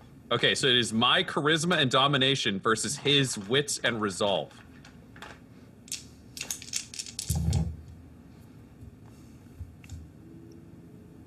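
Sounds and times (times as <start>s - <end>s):
speech: 0.3s - 4.7s
dice rolling for a charisma and domination check: 4.7s - 7.8s.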